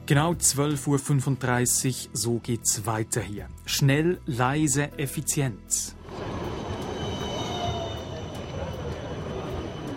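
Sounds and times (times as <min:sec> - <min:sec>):
speech: 0:00.1 - 0:06.0
tram rolling along its rails: 0:06.0 - 0:09.9
faint high-pitched whine of tram wheels: 0:06.1 - 0:09.9.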